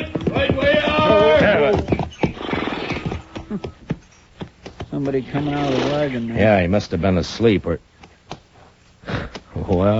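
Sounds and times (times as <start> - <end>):
horse hoof thumps: 0.0 - 5.8
horses neighing and snorting: 0.0 - 6.4
speech: 5.1 - 7.9, 9.8 - 9.9.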